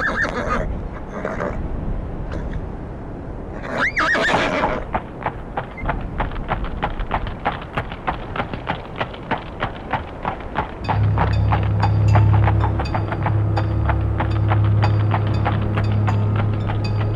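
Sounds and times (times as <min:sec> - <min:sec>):
horse whinnying: 0:00.0 - 0:01.6, 0:03.6 - 0:04.9
hooves of horses clopping on a hard surface into a paddock: 0:04.8 - 0:17.1.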